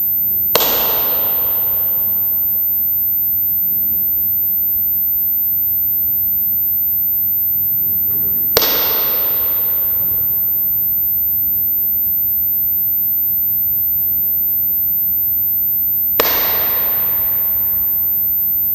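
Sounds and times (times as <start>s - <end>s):
stairs reverb: 0.5s - 2.8s, 8.5s - 10.8s, 16.2s - 18.3s.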